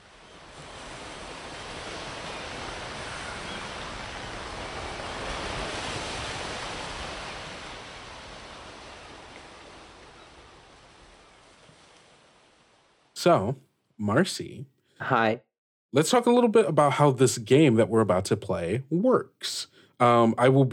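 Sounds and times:
ocean surf: 0.0s - 13.5s
speech: 13.2s - 20.7s.

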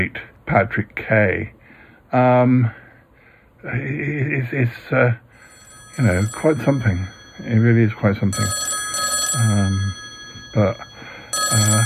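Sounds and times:
speech: 0.0s - 2.8s, 3.6s - 5.2s, 6.0s - 8.7s, 9.3s - 10.9s
mobile phone ringing: 5.4s - 11.8s.

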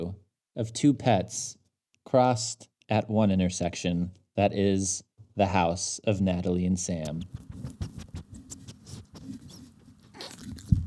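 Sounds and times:
speech: 0.0s - 7.9s
small dog sniffing and snuffling: 7.3s - 10.8s.

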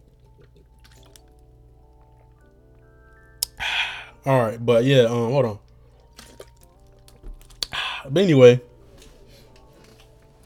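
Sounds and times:
person drinking a swig of water, sloshing and gurgling: 0.0s - 2.6s, 5.6s - 8.0s
speech: 4.2s - 5.6s, 8.1s - 8.7s.

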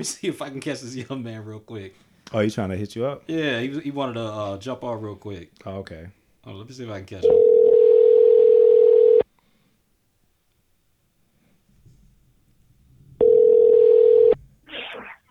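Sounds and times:
speech: 0.0s - 7.5s
outgoing phone call ringback tone: 7.2s - 9.3s, 13.2s - 14.4s.

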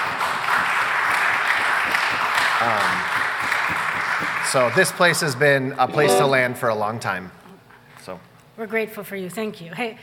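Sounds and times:
church congregation applauding during a service: 0.0s - 6.5s
speech: 2.6s - 3.2s, 4.5s - 7.4s, 8.0s - 10.0s.

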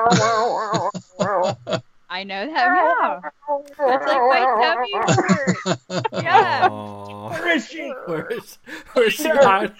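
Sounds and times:
speech: 0.1s - 0.3s, 2.2s - 6.7s, 7.5s - 9.7s
laughter: 0.1s - 1.8s, 3.7s - 9.7s
person imitating a cat hacking up a hairball: 0.1s - 1.8s, 3.7s - 5.6s, 6.2s - 7.5s.

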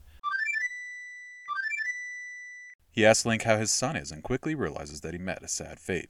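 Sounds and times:
video game flute melody: 0.2s - 2.3s
speech: 3.0s - 6.0s.

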